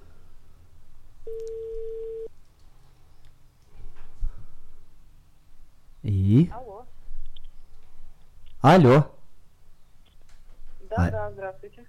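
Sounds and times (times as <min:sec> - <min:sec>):
low hum: 0:00.0 - 0:11.8
outgoing phone call ringback tone: 0:01.3 - 0:02.3
speech: 0:06.3 - 0:06.6, 0:08.6 - 0:09.1, 0:11.1 - 0:11.8.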